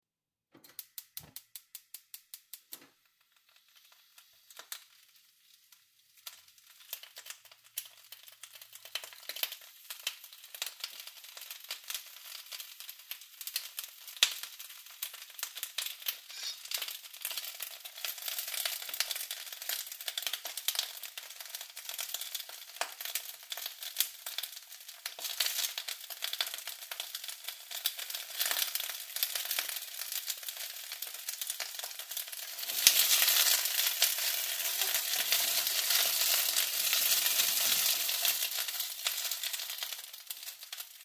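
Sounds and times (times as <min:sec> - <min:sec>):
food sizzling while stir-frying: 0:01.0 - 0:41.0.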